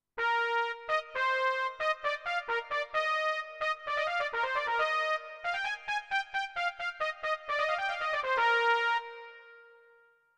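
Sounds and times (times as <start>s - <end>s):
warm trumpet: 0.2s - 5.9s, 6.6s - 9.7s.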